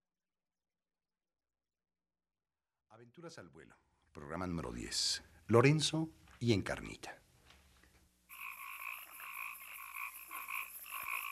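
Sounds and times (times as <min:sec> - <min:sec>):
speech: 0:03.0 - 0:07.2
chorus of frogs croaking: 0:08.3 - 0:11.2.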